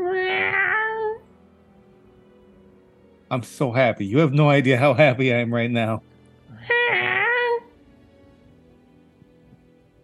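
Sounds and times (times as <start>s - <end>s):
cat perched on a shoulder meowing: 0.0s - 1.2s, 6.5s - 7.8s
speech: 3.3s - 6.6s.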